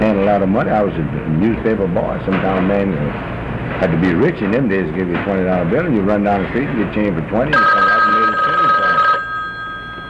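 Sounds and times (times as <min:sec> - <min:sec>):
speech: 0:00.1 - 0:07.9
private telephone ringing with a shrill electronic tone: 0:07.5 - 0:10.0.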